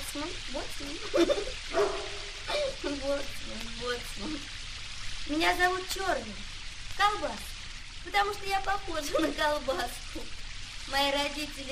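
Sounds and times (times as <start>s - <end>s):
speech: 0.2s - 2.2s, 3.0s - 4.6s, 5.2s - 11.7s
big dog barking on a pier in pouring rain: 1.7s - 2.4s.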